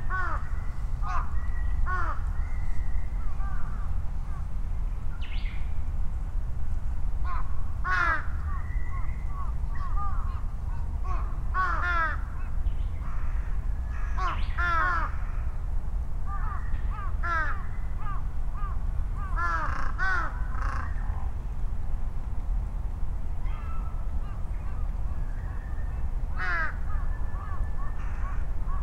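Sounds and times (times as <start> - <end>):
several crows cawing and answering one another in Japan: 0.0 - 2.2, 7.2 - 8.6, 11.0 - 12.4, 13.0 - 15.6, 16.3 - 21.0, 26.3 - 28.8
low vehicle traffic rumble: 0.0 - 28.8.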